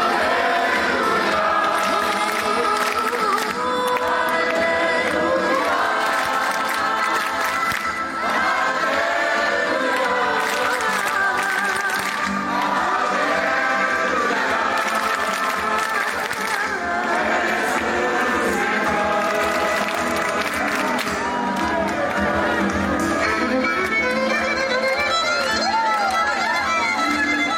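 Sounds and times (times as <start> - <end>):
crowd shouting an Easter greeting in unison: 0.0 - 3.0, 4.0 - 23.0
large crowd applauding and cheering: 0.0 - 27.5.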